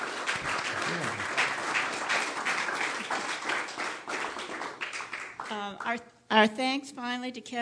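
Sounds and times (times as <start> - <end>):
audience applauding two speakers at the close of a program: 0.0 - 5.6
speech: 5.8 - 7.6.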